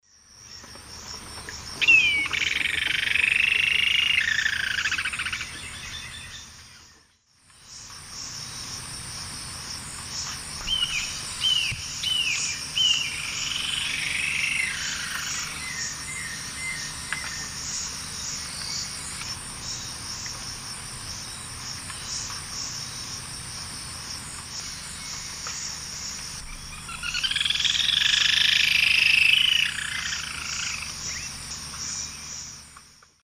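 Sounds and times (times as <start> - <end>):
group of Galbalcyrhynchus leucotis singing in South American eastern lowlands: 0.4 - 7.1, 10.2 - 20.4, 24.2 - 32.8.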